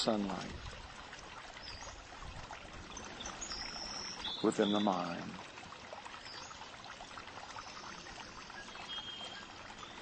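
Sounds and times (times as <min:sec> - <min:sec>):
speech: 0:00.0 - 0:00.8, 0:04.4 - 0:05.5
gurgling water: 0:00.0 - 0:10.0.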